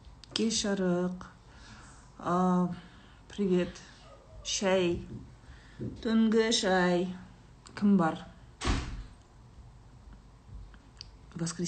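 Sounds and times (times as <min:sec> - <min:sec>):
speech: 0:00.4 - 0:01.4, 0:02.2 - 0:07.2, 0:07.8 - 0:08.3, 0:11.4 - 0:11.6
door slammed shut: 0:08.6 - 0:09.1.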